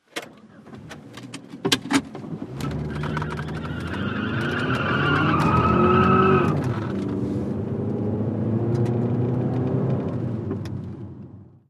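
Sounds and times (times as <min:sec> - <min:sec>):
mid-size sedan peeling out heard from interior: 0:02.3 - 0:10.6.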